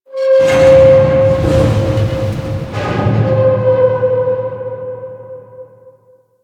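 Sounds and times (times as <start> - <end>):
metal groaning: 0.2 - 5.3.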